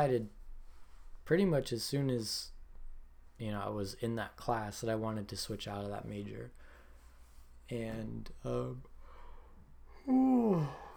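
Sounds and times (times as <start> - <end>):
speech: 0.0 - 0.4, 1.3 - 2.6, 3.4 - 6.7, 7.7 - 8.9, 10.0 - 10.9
person yawning: 10.0 - 10.9.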